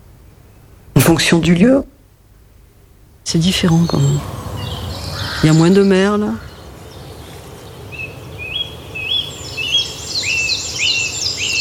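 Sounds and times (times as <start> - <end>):
speech: 1.1 - 1.9, 3.3 - 4.4, 5.4 - 6.5
low rumble: 3.2 - 11.3
leaf warbler singing: 3.3 - 11.6.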